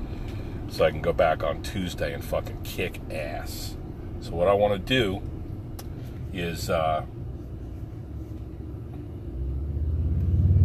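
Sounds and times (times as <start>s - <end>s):
speech: 0.7s - 5.4s, 6.3s - 7.2s
motorcycle riding past: 9.8s - 10.6s.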